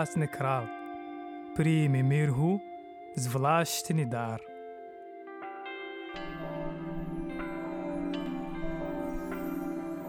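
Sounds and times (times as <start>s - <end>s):
speech: 0.0s - 0.8s, 1.6s - 4.5s
church bells ringing: 5.6s - 10.0s.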